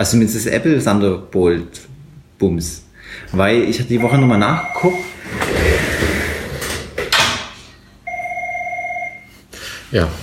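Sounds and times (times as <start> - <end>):
speech: 0.0 - 6.1, 9.9 - 10.2
telephone ringing with warbling electronic tone: 4.0 - 5.2, 8.0 - 9.3.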